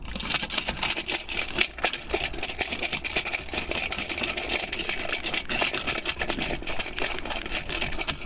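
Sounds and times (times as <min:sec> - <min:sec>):
chain rattling: 0:00.0 - 0:08.2.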